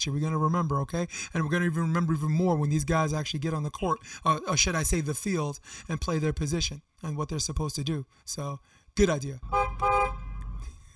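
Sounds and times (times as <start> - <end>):
speech: 0.0 - 10.2
loud car horn honk: 9.4 - 10.6.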